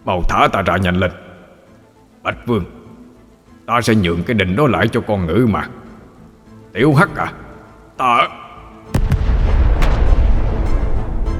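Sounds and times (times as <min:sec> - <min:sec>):
speech: 0:00.0 - 0:01.2, 0:02.2 - 0:02.8, 0:03.7 - 0:05.8, 0:06.8 - 0:07.4, 0:08.0 - 0:08.4
thunderous explosion in the sky: 0:08.9 - 0:11.3.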